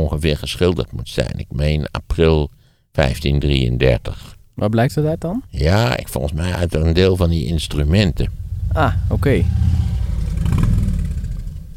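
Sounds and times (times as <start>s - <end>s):
speech: 0.0s - 10.6s
Harley-Davidson motorcycle engine revving: 8.2s - 11.7s.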